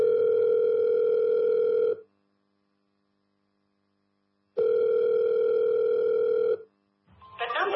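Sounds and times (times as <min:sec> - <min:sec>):
telephone ringback tones: 0:00.0 - 0:02.0, 0:04.6 - 0:06.6.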